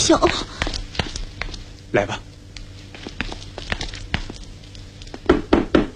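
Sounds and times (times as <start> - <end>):
speech: 0.1 - 0.5, 1.9 - 2.3
knocking on a door during a staged troupe performance: 5.3 - 5.9.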